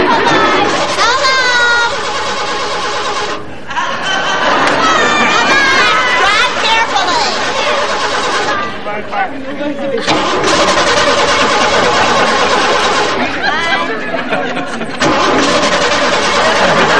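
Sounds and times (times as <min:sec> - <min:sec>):
car engine sputtering and cranking without catching: 0:00.0 - 0:03.6, 0:05.6 - 0:08.7, 0:10.0 - 0:13.4, 0:14.9 - 0:16.9
laughter: 0:00.0 - 0:16.9
overlapping voices and crowd chatter: 0:00.0 - 0:16.9.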